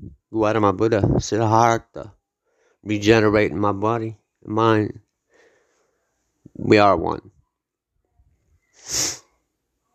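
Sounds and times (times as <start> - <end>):
speech: 0.4 - 2.2, 2.8 - 5.0, 6.6 - 7.3, 8.8 - 9.1
sharp inhale through the nose: 5.3 - 6.0, 8.7 - 9.3.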